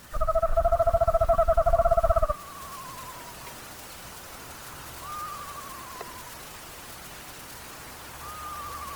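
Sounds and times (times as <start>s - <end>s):
screech owls calling back and forth: 0.0s - 3.4s, 4.9s - 6.4s, 8.2s - 8.9s
steady rain-like hiss: 0.0s - 8.9s.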